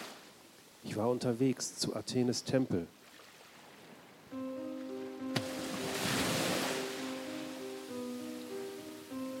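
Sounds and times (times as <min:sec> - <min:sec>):
speech: 0:00.9 - 0:03.0
rough stormy sea surf crashing: 0:04.6 - 0:09.3.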